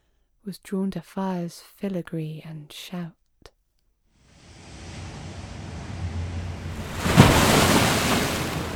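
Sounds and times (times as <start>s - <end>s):
speech: 0.4s - 3.2s
huge ocean wave crashing: 4.3s - 8.7s.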